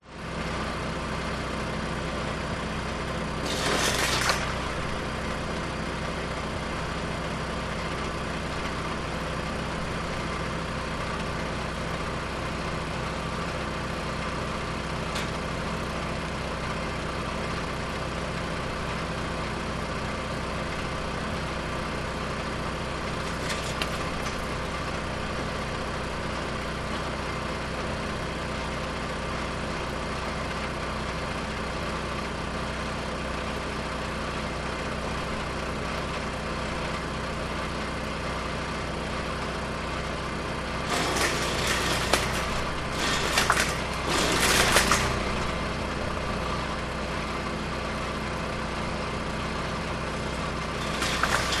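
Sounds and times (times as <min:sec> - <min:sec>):
industrial woodchipper petrol engine running: 0:00.0 - 0:51.5
industrial woodchipper chipping branches close to fence: 0:02.8 - 0:07.1, 0:13.2 - 0:16.7, 0:22.7 - 0:25.8, 0:40.5 - 0:46.9, 0:50.1 - 0:51.5.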